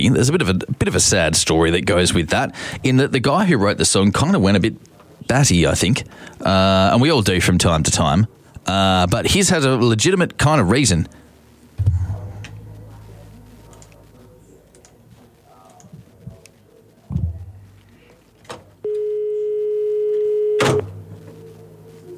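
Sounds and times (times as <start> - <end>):
speech: 0.0 - 11.2
telephone ringing with a steady electronic tone: 18.8 - 21.4.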